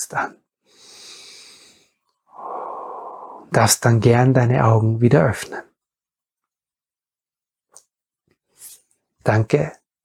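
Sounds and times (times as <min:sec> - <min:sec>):
speech: 0:00.0 - 0:00.4, 0:03.5 - 0:05.7, 0:09.2 - 0:09.8
loud deliberate breathing: 0:00.7 - 0:03.5.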